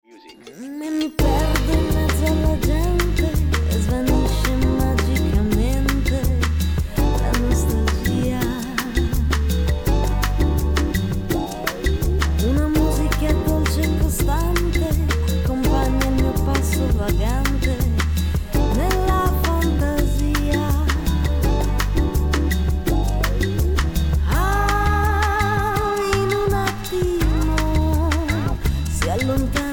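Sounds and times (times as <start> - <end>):
lounge ambience: 1.2 - 29.7.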